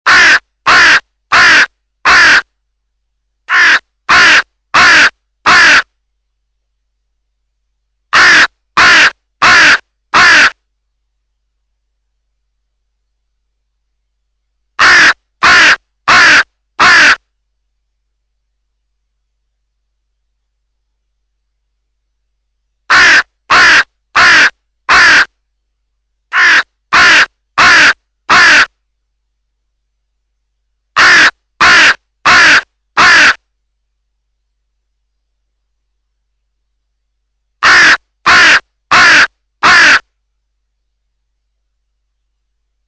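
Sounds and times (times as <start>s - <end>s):
crow cawing: 0.1s - 2.4s, 3.5s - 5.8s, 8.2s - 10.6s, 14.8s - 17.2s, 22.9s - 25.3s, 26.3s - 28.7s, 31.0s - 33.4s, 37.6s - 40.0s.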